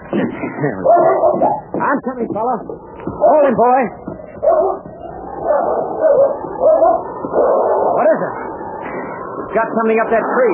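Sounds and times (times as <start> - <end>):
speech: 0.1 - 7.0, 9.5 - 10.5
dog barking and yelping: 0.8 - 1.7, 4.4 - 8.1.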